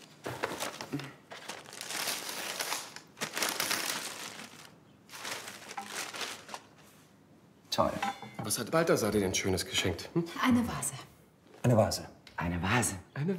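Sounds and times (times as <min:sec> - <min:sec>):
gift wrapping paper on a birthday present crinkling as it is torn open: 0:00.0 - 0:07.0
speech: 0:07.8 - 0:13.3.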